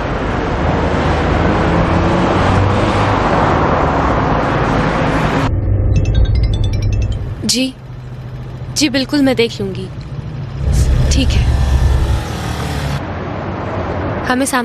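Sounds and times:
car speeding with engine and road noise: 0:00.1 - 0:06.2, 0:07.2 - 0:14.2
speech: 0:07.5 - 0:07.8, 0:08.8 - 0:10.0, 0:11.2 - 0:11.6, 0:14.3 - 0:14.6.

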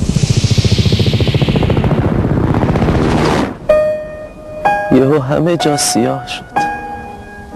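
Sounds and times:
helicopter flying overhead: 0:00.0 - 0:04.3
speech: 0:05.0 - 0:06.7.

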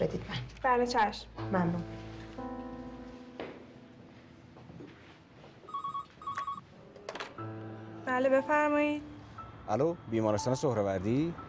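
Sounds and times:
speech: 0:00.0 - 0:02.1, 0:08.2 - 0:09.1, 0:09.7 - 0:11.4
electronic telephone trilling ring: 0:05.6 - 0:06.7.

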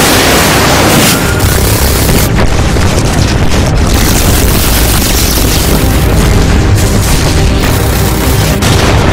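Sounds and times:
artillery shell explosions: 0:00.0 - 0:09.1.

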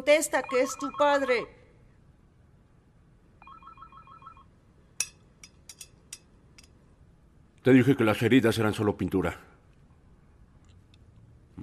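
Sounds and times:
speech: 0:00.0 - 0:01.6, 0:07.6 - 0:09.5
telephone ringing with an electronic trilling tone: 0:00.3 - 0:01.5, 0:03.4 - 0:04.5.

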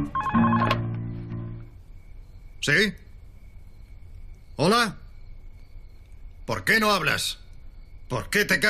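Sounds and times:
house telephone ringing: 0:00.1 - 0:00.9
speech: 0:02.6 - 0:03.0, 0:04.6 - 0:05.0, 0:06.5 - 0:07.4, 0:08.1 - 0:08.6.

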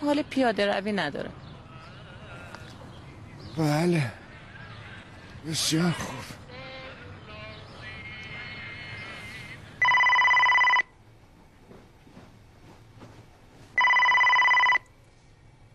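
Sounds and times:
speech: 0:00.0 - 0:01.5, 0:03.6 - 0:04.2, 0:05.4 - 0:06.4
low murmuring background: 0:00.0 - 0:09.8
telephone ringing unanswered: 0:09.8 - 0:11.0, 0:13.8 - 0:14.9.

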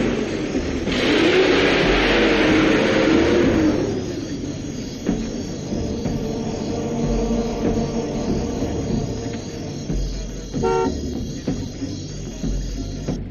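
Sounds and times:
car engine revving: 0:00.0 - 0:13.2
faint insect chirping: 0:03.4 - 0:13.2.

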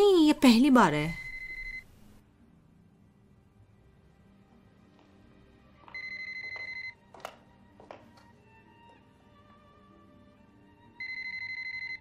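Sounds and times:
speech: 0:00.0 - 0:01.2
phone ringing with an electronic tone: 0:01.1 - 0:01.9, 0:05.9 - 0:07.0, 0:11.0 - 0:11.9.

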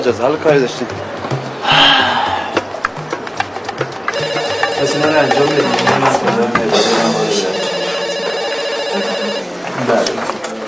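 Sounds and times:
speech: 0:00.0 - 0:02.0, 0:04.8 - 0:07.6, 0:08.9 - 0:09.2, 0:09.8 - 0:10.4
faint murmur of voices: 0:00.0 - 0:10.6
telephone ringing with a bright electronic trill: 0:04.1 - 0:09.8.

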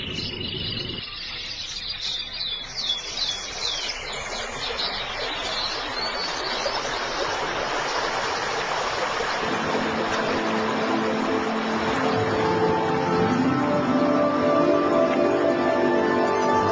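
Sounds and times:
high bird chirps: 0:00.0 - 0:06.9
water rushing from a small waterfall: 0:03.2 - 0:16.6.

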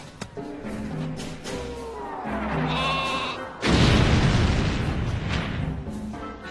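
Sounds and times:
weapon giving out a sheep-like bleat: 0:02.6 - 0:03.4
loud rumbling boom: 0:03.6 - 0:05.9.

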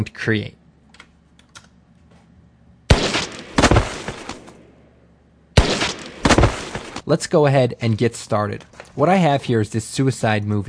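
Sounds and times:
speech: 0:00.0 - 0:00.6, 0:07.1 - 0:10.6
gunshot sound effects in an action movie effects demo: 0:02.9 - 0:04.8, 0:05.6 - 0:07.0.

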